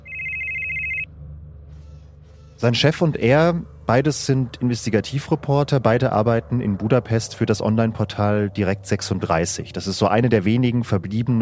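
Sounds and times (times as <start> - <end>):
telephone ringing with electronic trill: 0.0 - 1.1
low hum: 0.0 - 11.4
speech: 2.6 - 11.4.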